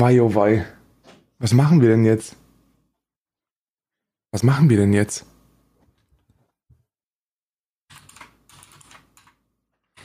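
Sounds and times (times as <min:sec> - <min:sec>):
speech: 0:00.0 - 0:00.8, 0:01.4 - 0:02.4, 0:04.3 - 0:05.3
someone typing a message on a computer keyboard: 0:07.9 - 0:10.0.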